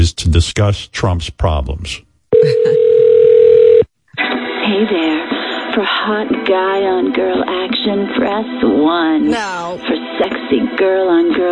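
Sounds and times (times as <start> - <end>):
speech: 0.0 - 2.9, 4.7 - 11.4
telephone dial tone as a call is placed: 2.6 - 3.8.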